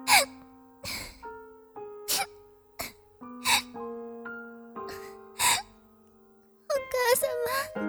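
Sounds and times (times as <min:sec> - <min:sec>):
young woman sobbing and whimpering: 0:00.1 - 0:01.2, 0:03.5 - 0:03.7, 0:04.9 - 0:05.7, 0:06.7 - 0:07.7
young woman's sharp gasping breaths: 0:00.1 - 0:01.3, 0:02.8 - 0:03.7, 0:04.9 - 0:05.7, 0:07.0 - 0:07.7.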